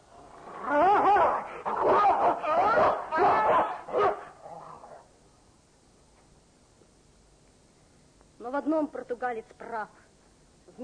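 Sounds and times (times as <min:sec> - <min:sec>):
dog barking, snarling and growling while attacking a man: 0:01.0 - 0:05.1
speech: 0:08.5 - 0:10.0.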